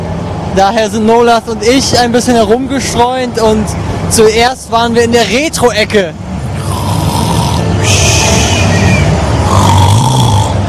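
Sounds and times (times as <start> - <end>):
speech: 0.6 - 6.3
person fake snoring while sitting on a seat: 6.6 - 8.7, 9.4 - 10.6.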